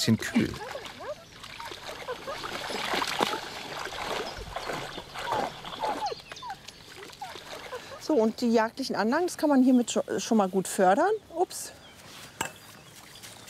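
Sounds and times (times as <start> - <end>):
speech: 0.0 - 0.7, 8.1 - 11.8
dog splashing and paddling in water: 0.4 - 8.1.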